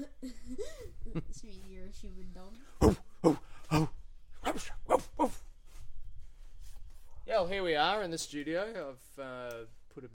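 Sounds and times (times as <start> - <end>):
speech: 0.0 - 3.9, 7.8 - 10.1
dog barking at passing cars and a rubbish truck: 4.4 - 5.4.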